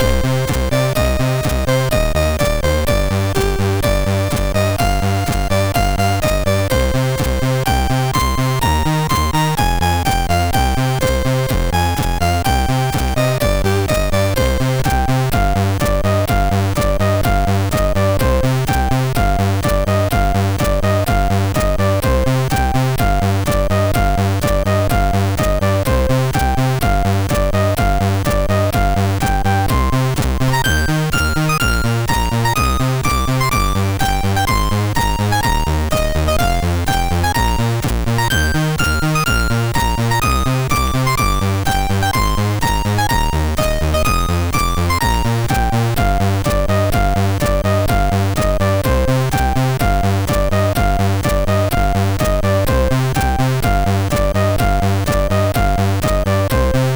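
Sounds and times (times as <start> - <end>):
SID chip MOS6581R2 synthesizer sound: 0.0 - 56.9.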